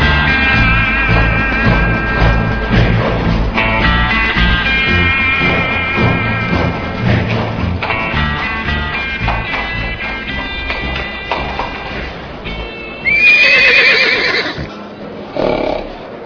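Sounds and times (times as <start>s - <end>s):
horse hooves clip-clopping: 0.0s - 14.7s
horse neighing: 13.0s - 14.7s, 15.3s - 16.0s.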